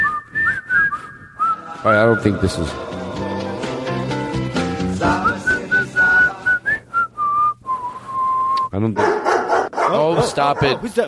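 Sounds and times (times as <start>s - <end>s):
person whistling a short melodic tune: 0.0s - 2.6s, 5.0s - 8.7s
chordal music: 1.6s - 6.4s
speech: 1.8s - 2.9s, 8.8s - 9.2s, 9.9s - 11.0s.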